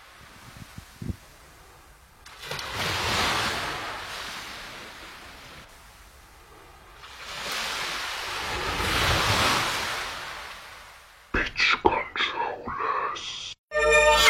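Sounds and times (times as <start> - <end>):
ocean surf: 0.0 - 13.3
people talking: 11.4 - 13.6.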